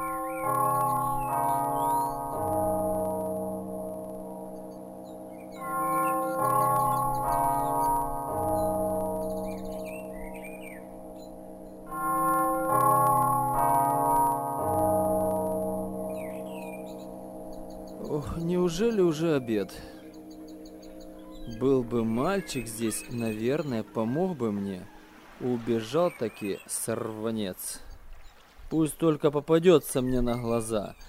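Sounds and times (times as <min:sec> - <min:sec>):
melodious bell ringing: 0:00.0 - 0:25.0
birds chirping faintly: 0:00.0 - 0:31.0
speech: 0:18.8 - 0:20.0, 0:21.6 - 0:27.9, 0:28.7 - 0:31.0.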